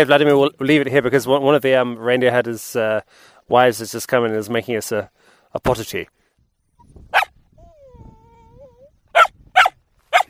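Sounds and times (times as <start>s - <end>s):
speech: 0.0s - 6.2s
dog whining in a reindeer herders' camp: 6.8s - 10.2s
dogs barking in a reindeer herders' camp: 7.1s - 7.9s, 9.1s - 10.2s.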